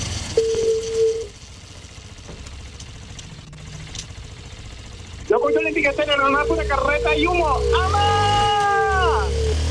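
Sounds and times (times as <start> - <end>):
low continuous engine-like rumble: 0.0 - 9.6
telephone ringing with an electronic tone: 0.4 - 1.3
speech: 5.8 - 8.3.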